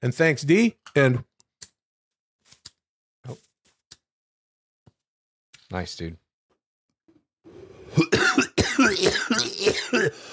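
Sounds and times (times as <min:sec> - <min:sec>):
speech: 0:00.0 - 0:01.3, 0:03.2 - 0:03.4, 0:05.7 - 0:06.2, 0:08.8 - 0:10.3
person deliberately fake coughing in hoarse voiced bursts: 0:07.9 - 0:10.3.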